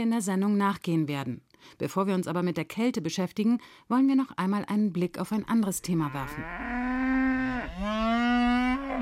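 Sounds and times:
speech: 0:00.0 - 0:06.8
cow mooing: 0:05.8 - 0:09.0.

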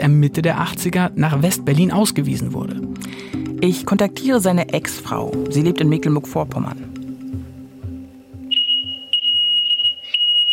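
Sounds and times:
speech: 0:00.0 - 0:06.9
loud piercing smoke detector beeping: 0:08.5 - 0:10.5.

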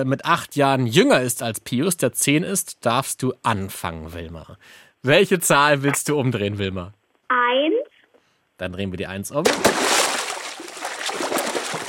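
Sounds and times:
speech: 0:00.0 - 0:07.8, 0:08.6 - 0:09.8
splash of person jumping into water: 0:09.4 - 0:11.8.

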